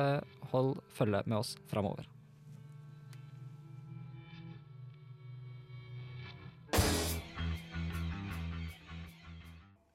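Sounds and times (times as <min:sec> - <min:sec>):
speech: 0:00.0 - 0:02.2
distorted rock song with fuzzy guitar and drums: 0:03.8 - 0:09.7.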